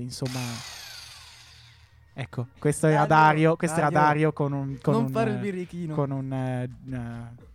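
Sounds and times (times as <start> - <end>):
speech: 0.0 - 0.8, 2.2 - 7.5
voice imitating the motor of a Tesla electric pickup: 0.2 - 1.9.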